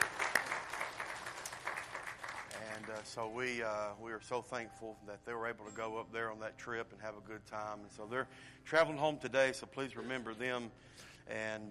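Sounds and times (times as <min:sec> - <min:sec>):
audience clapping: 0:00.0 - 0:03.6
speech: 0:02.9 - 0:11.6.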